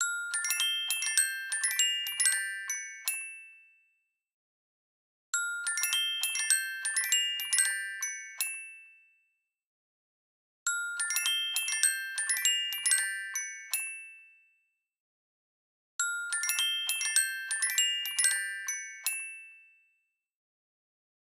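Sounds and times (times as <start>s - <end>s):
music box ringtone on a 2018 LG X5 phone: 0.0s - 4.0s, 5.4s - 9.3s, 10.7s - 14.6s, 16.0s - 20.1s.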